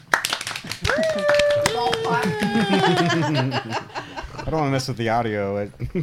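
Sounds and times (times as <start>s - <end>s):
people clapping to welcome a guest: 0.0s - 3.8s
laughter: 0.8s - 4.8s
speech: 0.8s - 6.0s.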